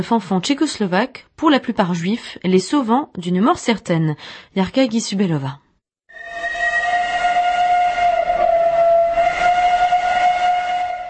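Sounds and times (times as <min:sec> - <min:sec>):
speech: 0:00.0 - 0:05.6
steam locomotive whistle blast: 0:06.1 - 0:11.0.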